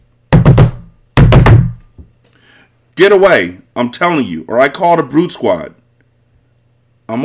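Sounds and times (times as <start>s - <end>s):
wooden hut door banging shut: 0.4s - 2.0s
speech: 3.0s - 5.8s, 7.1s - 7.2s.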